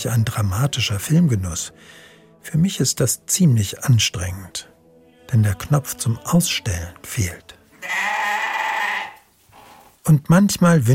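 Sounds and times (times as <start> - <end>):
speech: 0.0 - 4.7, 5.3 - 8.1, 10.1 - 10.9
billy goat bleating: 7.8 - 9.2.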